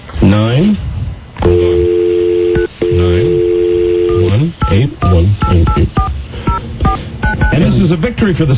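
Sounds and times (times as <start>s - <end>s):
speech: 0.4s - 0.9s, 7.9s - 8.5s
touch-tone telephone dialing beeps: 1.5s - 7.6s.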